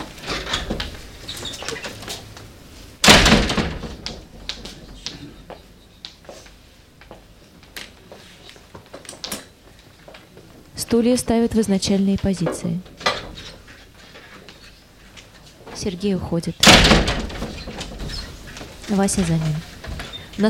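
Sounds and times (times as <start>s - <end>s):
door slamming as an actor runs out during a theatre festival performance: 3.0s - 4.4s, 16.6s - 18.4s
speech: 10.9s - 12.9s, 15.8s - 17.1s, 18.9s - 19.7s.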